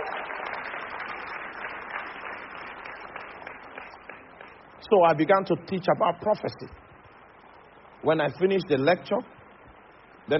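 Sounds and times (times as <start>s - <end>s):
crowd applauding: 0.0s - 4.8s
speech: 4.9s - 6.8s, 8.0s - 9.4s.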